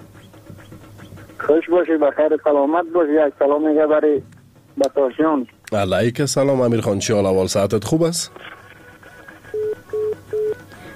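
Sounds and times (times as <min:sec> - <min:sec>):
speech: 0:01.4 - 0:08.6
steady mid-pitched electronic beeps on a telephone line as a call drops: 0:09.5 - 0:10.6.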